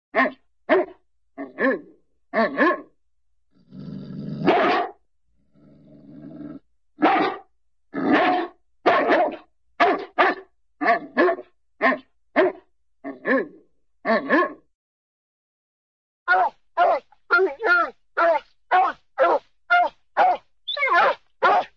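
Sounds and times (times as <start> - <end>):
cartoon St. Bernard dog barking: 0.1 - 2.9, 4.4 - 5.0, 7.0 - 7.4, 8.0 - 14.6, 16.3 - 21.7
cartoon St. Bernard dog growling: 3.5 - 4.5, 5.4 - 6.6, 13.0 - 14.6, 16.3 - 18.4.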